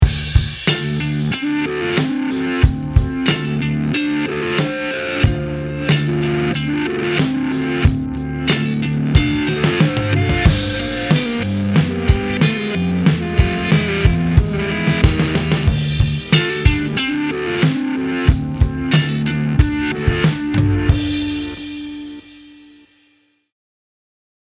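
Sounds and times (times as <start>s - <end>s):
guitar delay effect from a pedal board: 0.4s - 22.8s.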